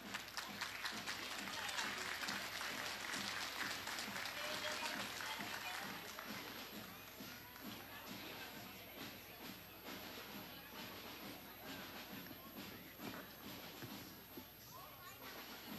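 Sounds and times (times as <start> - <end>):
audience applause: 0.0 - 7.2
crowd murmur: 0.0 - 15.7.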